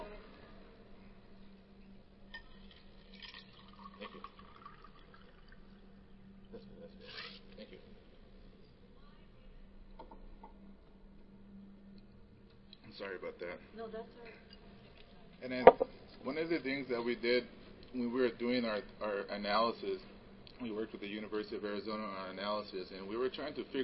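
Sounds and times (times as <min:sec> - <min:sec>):
water being poured: 0:02.3 - 0:05.8
sipping water: 0:02.3 - 0:06.0
speech: 0:12.9 - 0:14.6, 0:15.4 - 0:23.8.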